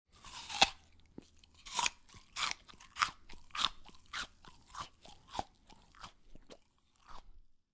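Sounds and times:
human biting an apple: 0:00.1 - 0:07.4.

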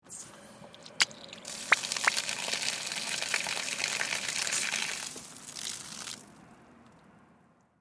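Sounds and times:
garden hose water flowing onto grass with run-off: 0:00.8 - 0:06.3.

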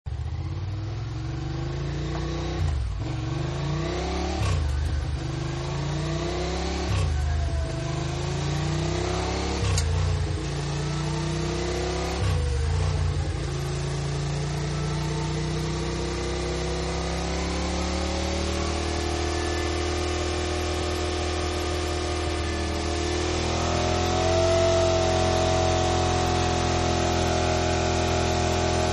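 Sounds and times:
Ducati motorcycle taking off: 0:00.1 - 0:28.9.

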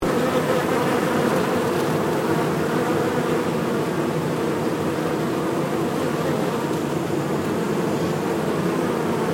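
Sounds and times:
bees buzzing in a hive: 0:00.0 - 0:09.3.

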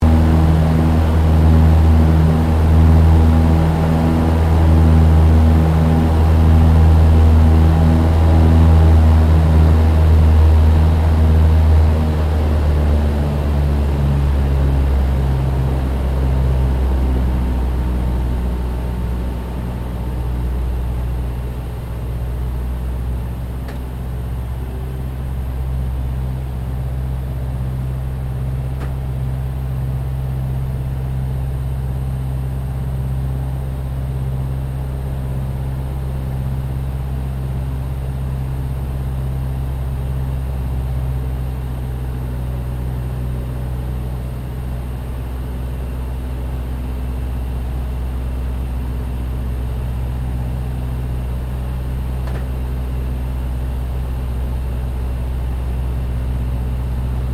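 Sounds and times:
Lockheed Hudson twin engine light bomber approaching heard from interior: 0:00.0 - 0:57.3.

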